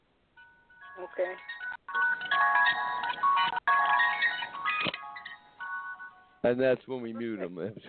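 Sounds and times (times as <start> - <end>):
tinny mechanical jack-in-the-box toy tune: 0.4 - 6.4
speech: 1.0 - 4.4, 6.4 - 7.8.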